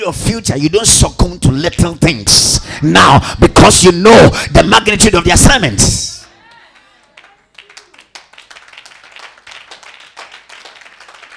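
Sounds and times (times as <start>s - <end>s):
speech: 0.0s - 6.1s
audience clapping at a church service: 6.2s - 11.3s.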